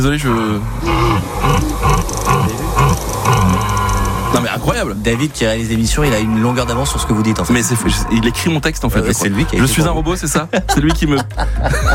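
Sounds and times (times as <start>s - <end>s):
speech: 0.0s - 2.6s, 4.3s - 11.9s
red deer stag bellowing during the rut: 0.3s - 4.6s, 6.0s - 9.7s
laughter: 6.2s - 11.9s.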